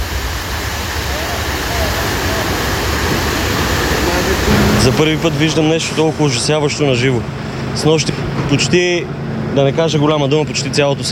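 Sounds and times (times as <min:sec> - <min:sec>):
rushing floodwater roar of an overflowing river: 0:00.0 - 0:11.0
speech: 0:04.8 - 0:11.0.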